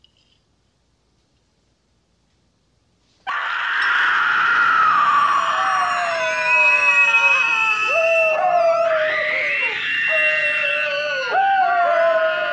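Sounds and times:
chorus of people howling like wolves in a film dinner scene: 0:03.3 - 0:12.5.

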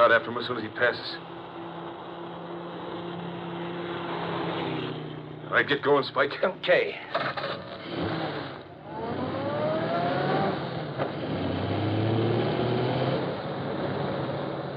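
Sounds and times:
speech: 0:00.0 - 0:01.4, 0:05.5 - 0:08.2
car engine accelerating on a highway: 0:00.0 - 0:14.7
constant rush of highway road noise: 0:00.0 - 0:14.7.

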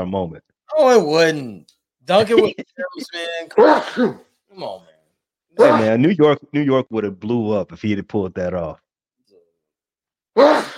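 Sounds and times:
speech: 0:00.0 - 0:04.9, 0:05.6 - 0:08.8, 0:10.4 - 0:10.7
person sneezing: 0:03.6 - 0:04.3, 0:05.6 - 0:05.9, 0:10.4 - 0:10.7.

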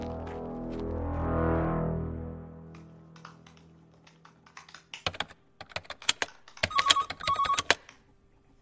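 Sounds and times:
low drone: 0:00.0 - 0:04.5
mobile phone ringing with an incoming call: 0:06.6 - 0:07.8.

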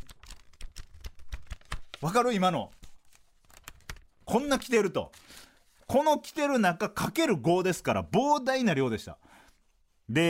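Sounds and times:
sheets of paper rustling and crinkling: 0:00.0 - 0:06.0
speech: 0:02.0 - 0:02.8, 0:04.3 - 0:05.2, 0:05.9 - 0:09.3, 0:10.1 - 0:10.2.

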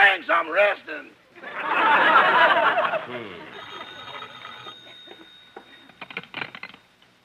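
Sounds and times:
speech: 0:00.1 - 0:03.5
laughter: 0:01.4 - 0:05.3
low murmuring: 0:02.8 - 0:04.7
telephone bell ringing: 0:03.5 - 0:06.8.

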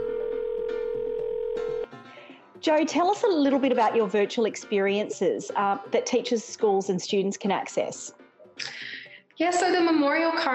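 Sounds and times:
telephone dial tone: 0:00.0 - 0:01.9
speech: 0:02.6 - 0:10.5.

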